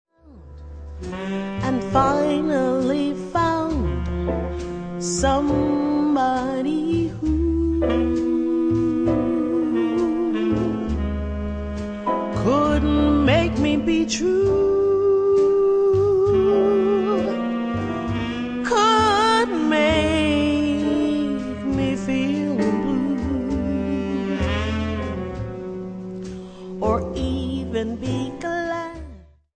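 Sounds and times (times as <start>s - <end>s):
67 bpm ballad: 0.2s - 29.3s.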